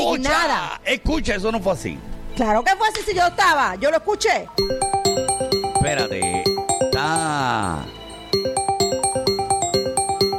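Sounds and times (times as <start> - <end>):
speech: 0.1 - 4.8, 5.8 - 8.0
swooping electronic tone: 4.6 - 10.3
telephone line ringing on a call-in line: 4.6 - 10.3.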